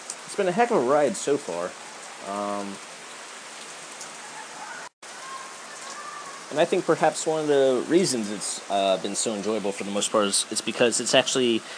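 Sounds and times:
steady dense rain falling: 0:00.0 - 0:11.7
speech: 0:00.3 - 0:02.9, 0:06.5 - 0:11.7.

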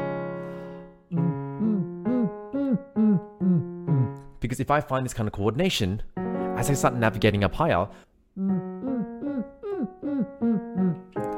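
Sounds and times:
voice imitating a kick drum as a vocal exercise: 0:01.1 - 0:04.2, 0:08.4 - 0:11.1
speech: 0:04.4 - 0:08.5.

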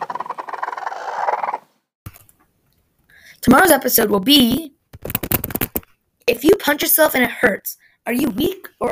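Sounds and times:
chicken giving a rapid trilling growl: 0:00.0 - 0:01.7
speech: 0:03.4 - 0:04.8, 0:06.3 - 0:08.9.

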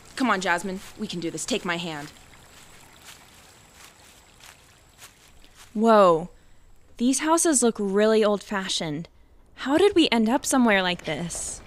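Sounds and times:
rushing stream water: 0:00.0 - 0:05.7
speech: 0:00.2 - 0:02.2, 0:05.8 - 0:06.4, 0:07.0 - 0:11.6.

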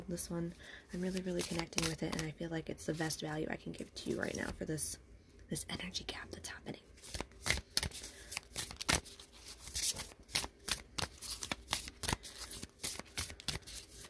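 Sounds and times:
speech: 0:00.1 - 0:07.3
stiff oracle cards being shuffled: 0:01.0 - 0:02.4, 0:07.0 - 0:14.0.

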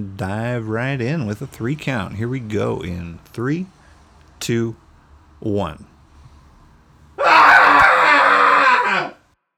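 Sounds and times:
speech: 0:00.0 - 0:03.8, 0:04.4 - 0:04.8, 0:05.4 - 0:05.9
cathartic human scream: 0:07.2 - 0:09.2.

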